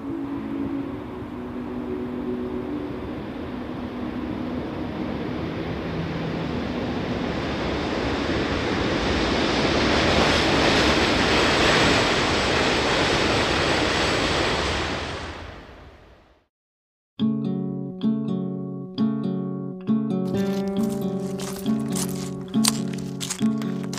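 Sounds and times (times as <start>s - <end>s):
music: 0.0s - 6.8s, 17.2s - 23.9s
train rumbling across a bridge over a river at night: 1.1s - 15.6s.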